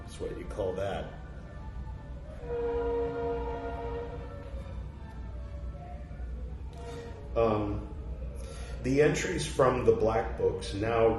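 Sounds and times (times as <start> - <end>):
speech: 0.2 - 1.2, 2.4 - 3.2, 7.4 - 7.9, 8.8 - 11.1
train horn blowing a long steady chord: 2.3 - 4.5.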